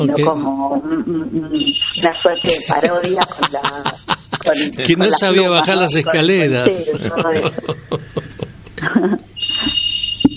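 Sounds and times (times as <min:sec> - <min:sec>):
speech: 0:00.0 - 0:08.1
shrill high-pitched electronic alarm tone: 0:01.5 - 0:02.8, 0:09.4 - 0:10.3
people laughing: 0:02.5 - 0:04.8, 0:06.6 - 0:09.3.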